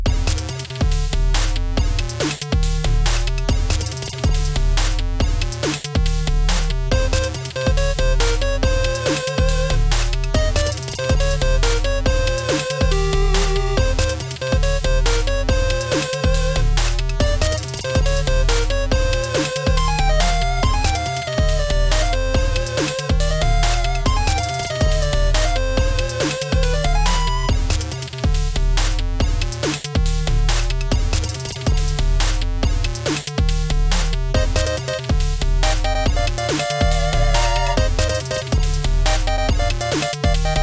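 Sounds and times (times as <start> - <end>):
8-bit game level music: 0.1 - 31.2, 32.0 - 40.6.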